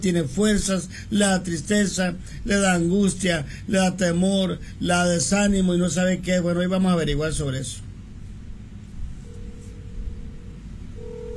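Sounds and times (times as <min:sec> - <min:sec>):
speech: 0:00.0 - 0:07.9
telephone ringback tone on an outgoing call: 0:09.2 - 0:11.3.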